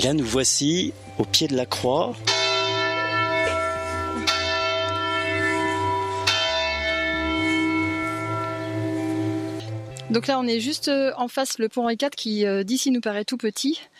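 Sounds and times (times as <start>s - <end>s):
speech: 0.0s - 2.5s, 10.1s - 13.9s
large church bells in Châtellerault ringing the hour: 2.0s - 9.8s.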